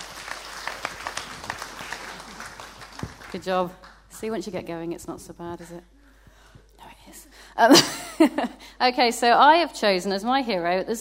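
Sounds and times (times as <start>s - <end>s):
audience applause: 0.0s - 4.1s
speech: 3.3s - 6.0s, 7.6s - 10.9s.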